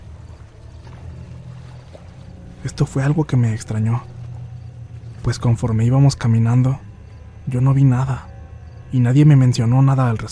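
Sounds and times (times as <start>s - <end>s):
water churning and sloshing in a river: 0.0s - 5.7s
speech: 2.6s - 4.2s, 5.2s - 6.8s, 7.4s - 8.3s, 8.9s - 10.2s.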